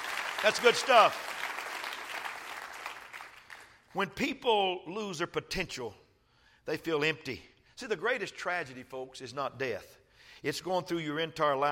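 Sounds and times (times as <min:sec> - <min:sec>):
audience clapping hands in steady dense applause: 0:00.0 - 0:03.7
speech: 0:00.4 - 0:01.3, 0:03.9 - 0:06.0, 0:06.6 - 0:11.6.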